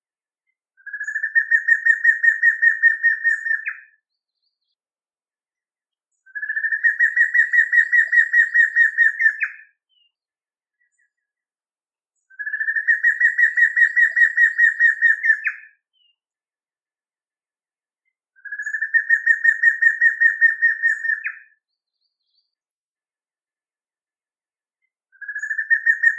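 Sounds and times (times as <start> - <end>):
matracão bird singing: 0.5 - 4.9, 6.1 - 11.4, 12.2 - 16.2, 18.0 - 22.6, 24.8 - 26.1.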